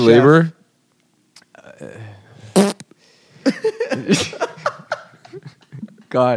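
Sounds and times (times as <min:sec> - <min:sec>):
speech: 0:00.0 - 0:00.6, 0:03.5 - 0:04.5, 0:06.1 - 0:06.3
low drawn-out fart: 0:02.5 - 0:02.8
several people laughing loudly: 0:03.4 - 0:06.0.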